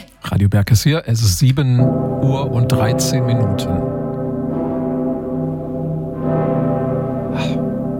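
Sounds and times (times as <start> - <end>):
speech: 0.4 - 3.9
deep heavy cathedral bells ringing: 1.8 - 7.9.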